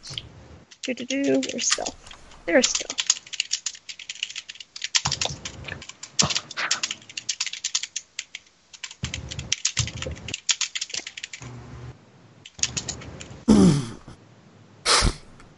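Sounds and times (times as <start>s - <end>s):
slow typing on a computer keyboard: 0.6s - 11.4s, 12.4s - 13.4s
speech: 0.8s - 3.0s.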